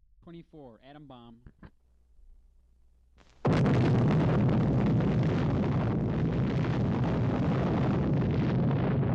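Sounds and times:
speech: 0.2 - 1.7
atomic bomb explosion: 3.4 - 9.1
roaring rumble of atomic bomb explosion: 3.5 - 9.1.

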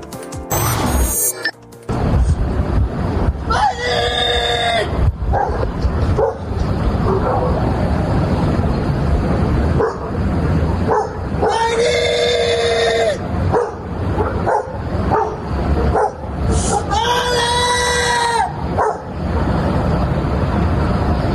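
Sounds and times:
constant rough outdoor noise: 0.5 - 21.3
strained cries: 3.4 - 5.1, 11.4 - 13.3, 16.5 - 18.7
person screaming in anguish searching for missing relatives: 3.5 - 5.0, 11.4 - 13.2, 16.6 - 18.6.

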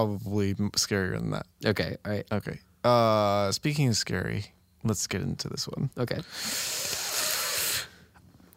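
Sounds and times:
speech: 0.0 - 6.9
labored wheezing breathing from a person who cannot breathe well: 6.2 - 8.2.

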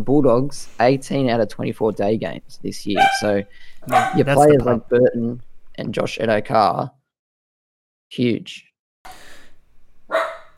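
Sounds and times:
speech: 0.0 - 7.0, 8.1 - 9.3
dog barking: 3.0 - 4.5, 10.1 - 10.5.

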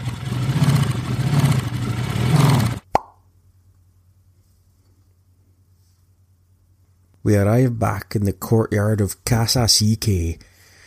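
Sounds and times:
motorcycle with a sidecar engine throbbing: 0.0 - 2.9
sharp pop: 2.8 - 3.2
speech: 7.2 - 10.5.

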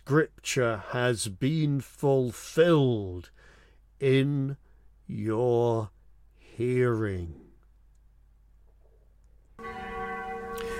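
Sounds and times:
speech: 0.1 - 6.0, 6.6 - 7.4
mission bell ringing: 9.6 - 10.7.

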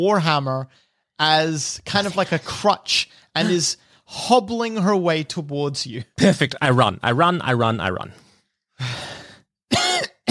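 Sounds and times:
speech: 0.0 - 8.2, 8.8 - 9.2
person coughing up water: 9.7 - 10.2.

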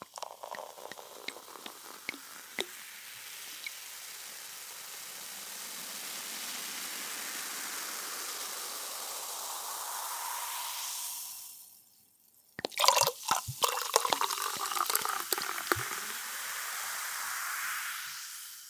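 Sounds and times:
alcohol being poured into a glass: 0.0 - 2.8, 12.6 - 16.2
steady hiss: 0.0 - 18.6.

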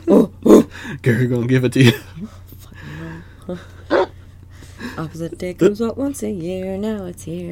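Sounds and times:
low steady hum: 0.0 - 7.5
speech: 1.0 - 2.4, 3.5 - 3.7, 5.0 - 7.5
dog barking and yelping: 3.9 - 4.1.

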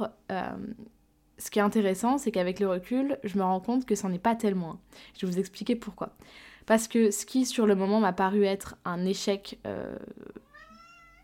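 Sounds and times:
speech: 0.0 - 10.5
cat meowing: 10.4 - 11.2.

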